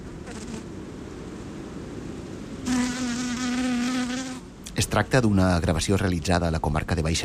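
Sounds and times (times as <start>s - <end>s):
single bee buzzing loudly: 0.2s - 0.6s, 2.6s - 4.5s
bees buzzing while pollinating a rose: 2.6s - 4.5s
speech: 4.8s - 7.2s.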